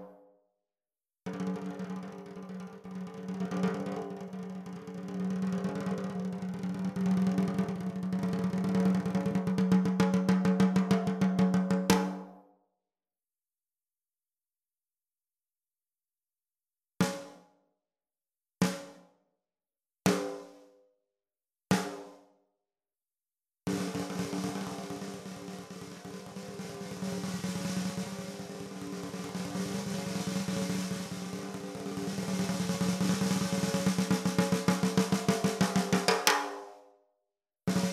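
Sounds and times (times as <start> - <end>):
12x7 snare drums: 1.3 - 12.3, 17.0 - 17.4, 18.6 - 19.0, 20.1 - 20.6, 21.7 - 22.2, 23.7 - 36.7, 37.7 - 37.9.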